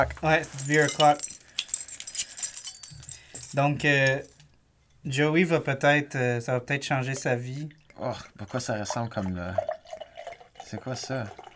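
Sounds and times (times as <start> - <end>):
speech: 0.0 - 1.3, 3.6 - 4.3, 5.0 - 9.7, 10.7 - 11.4
keys jangling and clinking: 0.0 - 4.4.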